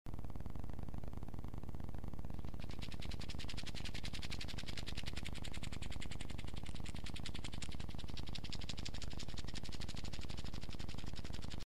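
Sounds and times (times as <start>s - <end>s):
mouse running in a wheel: 0.2s - 11.6s.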